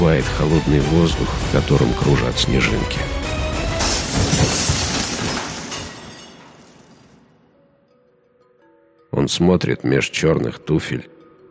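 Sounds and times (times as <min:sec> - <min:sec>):
speech: 0:00.0 - 0:03.2, 0:09.3 - 0:11.2
window glass shattering into small shards: 0:03.4 - 0:07.4
small glass shards tinkling and settling: 0:03.8 - 0:07.2.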